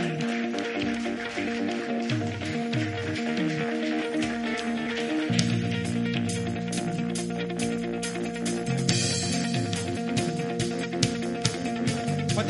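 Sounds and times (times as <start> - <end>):
audience clapping loudly: 0.0 - 12.4
sustained organ-like music: 0.0 - 12.4.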